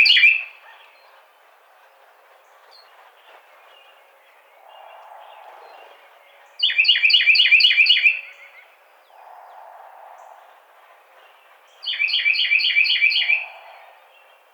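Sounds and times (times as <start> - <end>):
Carolina wren song: 3.8 - 14.5.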